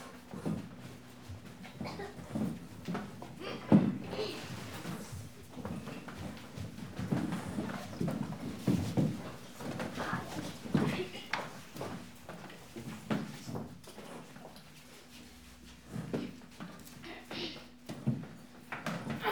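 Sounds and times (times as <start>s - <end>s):
students quietly entering a classroom and sitting down: 0.3s - 19.2s.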